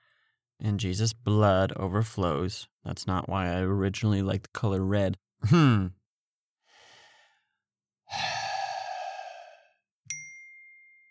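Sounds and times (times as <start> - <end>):
speech: 0.6 - 6.0
person sighing heavily: 8.1 - 9.8.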